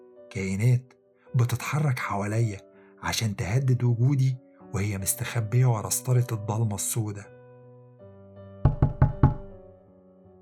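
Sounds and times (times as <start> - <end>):
speech: 0.4 - 7.4
firm knocks on a door: 8.7 - 9.6.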